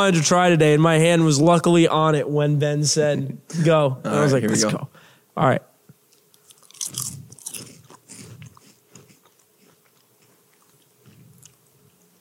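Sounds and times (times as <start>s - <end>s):
speech: 0.0s - 5.7s
crisp chip bitten and chewed: 6.1s - 12.1s.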